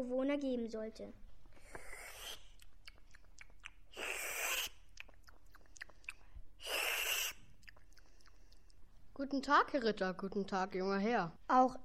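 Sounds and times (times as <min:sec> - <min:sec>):
speech: 0:00.0 - 0:01.2, 0:09.2 - 0:11.8
small mouth and clicking sounds: 0:01.5 - 0:09.0
cook slurping soup from a huge kettle: 0:01.6 - 0:02.6, 0:03.9 - 0:08.8.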